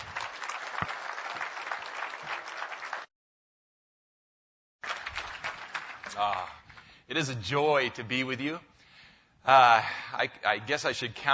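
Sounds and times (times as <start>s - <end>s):
audience clapping to welcome a speaker: 0.0s - 3.1s, 4.8s - 6.9s
speech: 6.2s - 8.7s, 9.4s - 11.3s.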